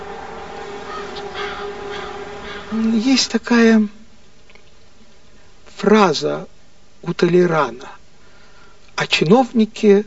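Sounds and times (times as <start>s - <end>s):
jackdaws and rooks cawing as they fly off bell towers: 0.0s - 2.9s
steady hum and hiss: 0.0s - 10.0s
speech: 2.7s - 4.0s, 5.8s - 8.0s, 9.0s - 10.0s.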